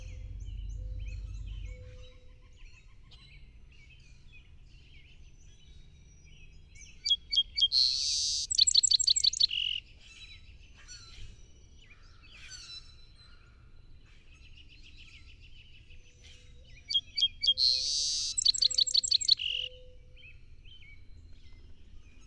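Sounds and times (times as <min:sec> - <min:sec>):
low rumble: 0:00.0 - 0:03.7
song sparrow song of quick notes, harsh buzz, rattling series and trill: 0:00.0 - 0:22.2.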